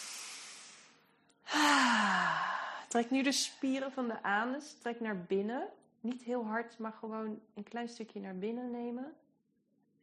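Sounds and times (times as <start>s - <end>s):
deep breath in and out during a pelvic-floor relaxation exercise: 0.0s - 2.9s
speech: 2.9s - 9.2s.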